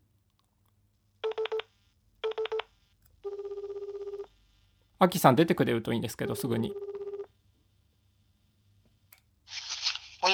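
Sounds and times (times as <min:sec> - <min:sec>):
telephone keypad being dialed to place a call: 0:01.2 - 0:04.3
speech: 0:05.0 - 0:06.9.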